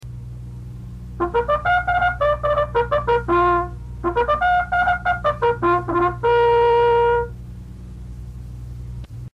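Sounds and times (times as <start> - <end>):
bugle call: 1.2 - 7.4.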